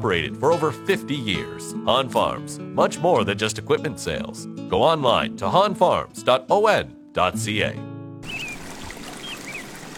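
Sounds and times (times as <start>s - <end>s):
speech: 0.0s - 7.9s
river water flowing in Stratford: 8.2s - 9.9s.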